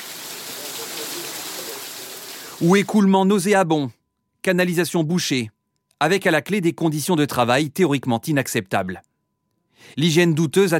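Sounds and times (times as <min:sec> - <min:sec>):
heavy rain: 0:00.0 - 0:02.9
water leaking into building, splashing and running: 0:00.0 - 0:02.9
speech: 0:02.6 - 0:09.1, 0:09.8 - 0:10.7.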